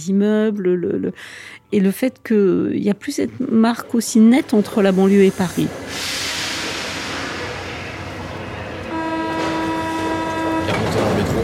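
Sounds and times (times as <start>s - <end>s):
speech: 0.0s - 6.3s
Paris metro train running with rumble and hiss: 3.0s - 11.4s.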